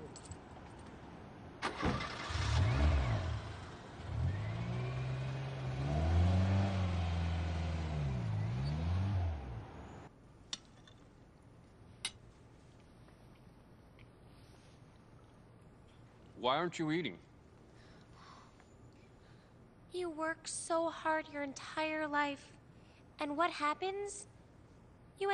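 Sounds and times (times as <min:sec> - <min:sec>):
car engine starting and revving: 0:02.0 - 0:10.1
speech: 0:16.4 - 0:17.3, 0:20.2 - 0:22.6, 0:23.2 - 0:24.3, 0:25.2 - 0:25.3.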